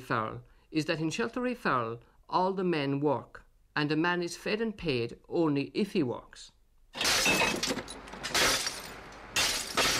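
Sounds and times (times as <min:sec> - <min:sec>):
speech: 0:00.1 - 0:07.7
glass bottles being smashed for sale to a factory: 0:06.9 - 0:09.9
tinkling glass debris: 0:07.0 - 0:09.9.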